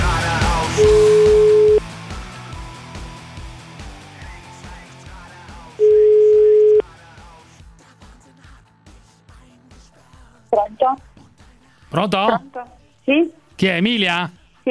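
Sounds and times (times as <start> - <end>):
music with a regular beat: 0.0 - 12.2
telephone tone beep while placing a phone call: 0.8 - 1.8, 5.8 - 6.8
speech: 10.8 - 11.1, 11.9 - 14.7.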